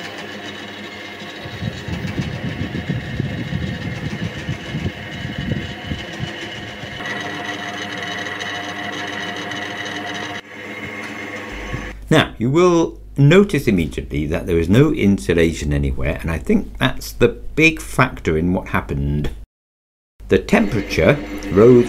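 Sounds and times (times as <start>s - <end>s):
water-filled spinning disc system machine whirring: 0.0s - 12.0s, 20.4s - 21.8s
speech: 12.1s - 19.4s, 20.3s - 21.8s.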